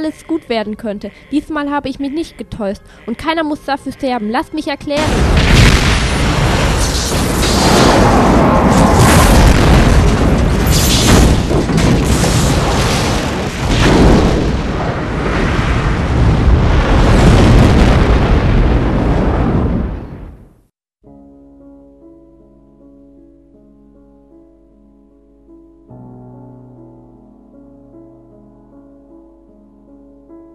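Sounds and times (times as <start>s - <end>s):
speech: 0.0s - 5.7s
massive sustained explosion in the middle of a ship: 5.0s - 20.5s.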